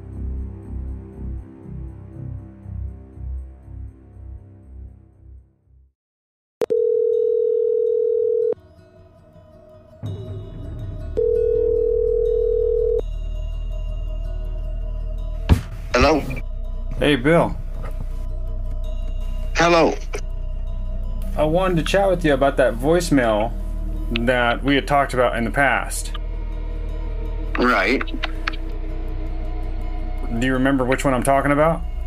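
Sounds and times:
music: 0:00.0 - 0:05.9, 0:06.8 - 0:32.0
phone ringing tone on the line while placing a call: 0:06.6 - 0:08.6, 0:11.2 - 0:13.0
speech: 0:17.1 - 0:17.6, 0:19.6 - 0:20.1, 0:21.4 - 0:26.2, 0:27.6 - 0:28.3, 0:30.4 - 0:31.9.

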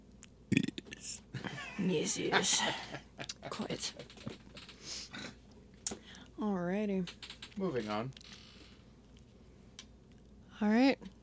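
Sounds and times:
person burping: 0:00.5 - 0:01.1
speech: 0:01.8 - 0:04.3, 0:06.4 - 0:08.2, 0:10.6 - 0:11.2.

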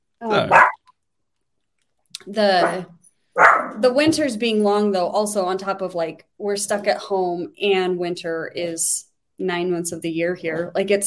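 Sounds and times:
speech: 0:00.3 - 0:00.7, 0:02.3 - 0:03.0, 0:03.8 - 0:11.0
dog barking: 0:00.4 - 0:00.8, 0:02.6 - 0:03.8.

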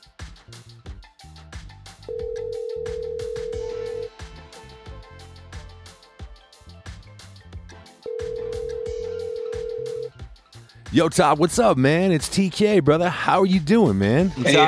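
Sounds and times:
continuous music: 0:00.0 - 0:14.6
outgoing phone call ringback tone: 0:02.1 - 0:04.1, 0:08.1 - 0:10.1
speech: 0:10.9 - 0:14.6.

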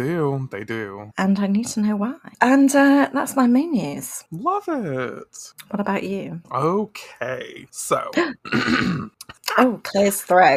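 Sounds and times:
speech: 0:00.0 - 0:10.5
person clearing throat: 0:08.2 - 0:09.2.

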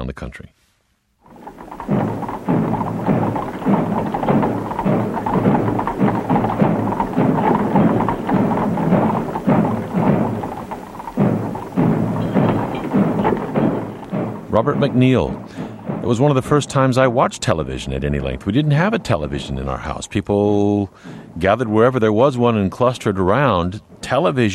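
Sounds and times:
speech: 0:00.1 - 0:00.6, 0:14.6 - 0:24.5
dull rumbling drum roll: 0:01.2 - 0:24.5
muffled funeral drums beating in a slow rhythm: 0:01.3 - 0:20.0.

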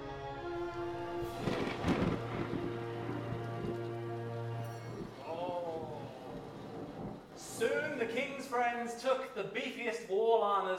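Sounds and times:
sustained low droning tone: 0:00.3 - 0:07.2
steady rain-like hiss: 0:00.6 - 0:09.6
loud thunder crash: 0:01.2 - 0:07.3
speech: 0:08.0 - 0:10.7.

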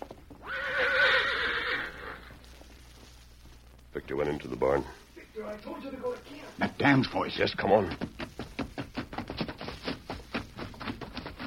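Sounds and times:
horse whinnying at a barn entrance: 0:00.4 - 0:02.4
speech: 0:04.1 - 0:08.2.

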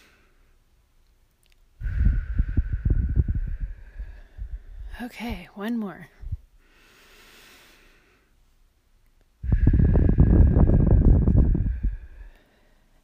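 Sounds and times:
slow deep breathing exercise inhale and exhale: 0:00.0 - 0:00.6, 0:01.8 - 0:05.0, 0:06.2 - 0:08.4, 0:09.4 - 0:13.0
speech: 0:05.0 - 0:06.2.

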